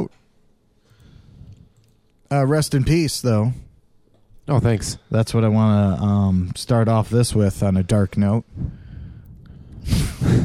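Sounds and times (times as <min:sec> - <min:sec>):
speech: 0:00.0 - 0:00.2, 0:02.3 - 0:03.6, 0:04.5 - 0:08.8
heavy breathing blasts into a microphone: 0:00.8 - 0:01.8, 0:08.4 - 0:10.4.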